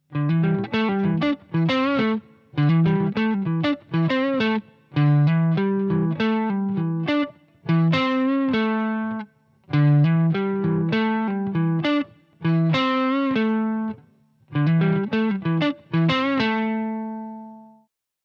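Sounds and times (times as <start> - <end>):
pentatonic guitar lick: 0.1 - 17.8.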